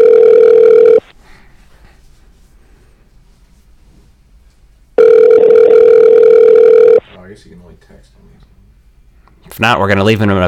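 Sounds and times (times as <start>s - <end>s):
telephone ringback tone on the caller's line: 0.0s - 1.0s, 5.0s - 7.0s
speech: 9.6s - 10.4s.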